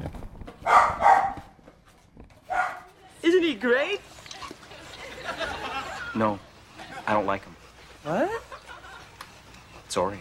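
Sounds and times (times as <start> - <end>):
dog barking: 0.6 - 1.6, 2.5 - 2.9
speech: 3.5 - 4.1, 6.2 - 6.5, 7.1 - 8.5, 10.0 - 10.1
laughter: 4.3 - 9.9.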